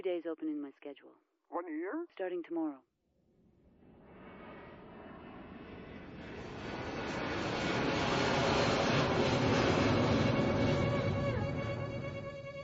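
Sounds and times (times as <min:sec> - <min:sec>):
speech: 0:00.0 - 0:02.9
airplane roar on a night flight: 0:03.8 - 0:12.6.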